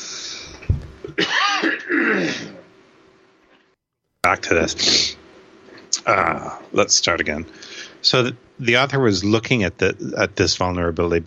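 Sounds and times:
person coughing: 1.1s - 2.6s
speech: 4.3s - 5.2s, 6.0s - 11.2s.

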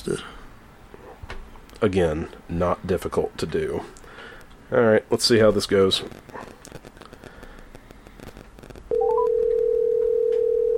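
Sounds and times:
speech: 0.0s - 0.4s, 1.8s - 4.0s, 4.7s - 6.6s
rustling noise: 0.0s - 10.6s
loud steady telephone tone: 8.9s - 10.7s.

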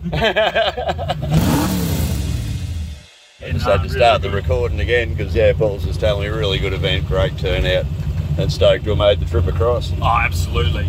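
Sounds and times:
laughter: 0.0s - 1.5s
speech: 0.0s - 1.8s, 3.5s - 10.8s
car engine revving: 0.8s - 10.8s.

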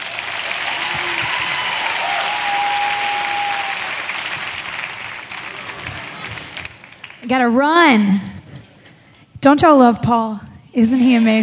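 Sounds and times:
church audience clapping and applauding: 0.0s - 7.4s
speech: 7.3s - 8.3s, 9.4s - 11.4s.

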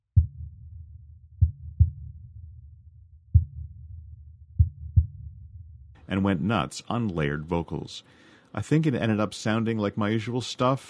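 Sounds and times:
kick drum in a music track: 0.1s - 2.5s, 3.3s - 5.8s
synthesized heartbeat thumps layered under a kick drum: 0.1s - 6.0s
speech: 6.1s - 10.8s.

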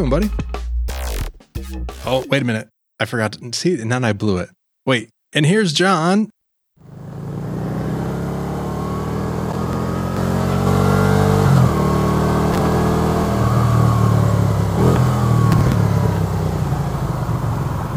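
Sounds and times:
speech: 0.0s - 0.5s, 1.7s - 7.0s
vehicle engine exhausts revving: 6.8s - 17.9s.

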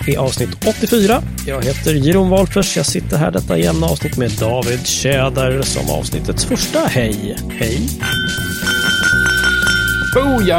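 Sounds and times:
speech: 0.0s - 8.8s, 10.1s - 10.5s
two Glencairn whisky glasses clinking together: 8.0s - 10.5s.

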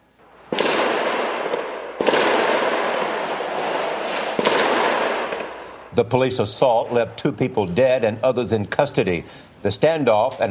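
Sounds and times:
gunshots with long rumbling echo during police raid: 0.5s - 5.9s
speech: 6.0s - 10.5s.

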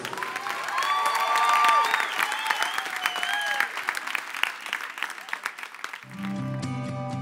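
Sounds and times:
audience applause: 0.0s - 6.7s.

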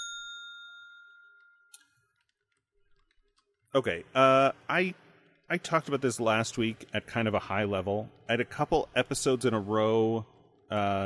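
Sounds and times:
bell strike with a bright metallic ding: 0.0s - 2.0s
speech: 3.7s - 11.0s.

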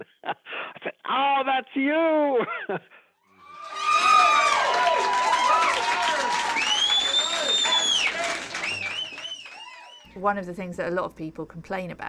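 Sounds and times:
speech: 1.2s - 3.0s, 10.2s - 12.0s
large audience screaming and cheering at live concert: 3.3s - 10.1s
audience clapping at live concert: 3.6s - 10.1s.

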